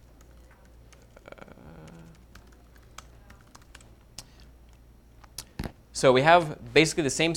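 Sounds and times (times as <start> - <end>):
computer keyboard keys being pressed to move a video game character: 0.0 - 5.4
steady low hum: 0.0 - 7.3
speech: 6.0 - 7.3.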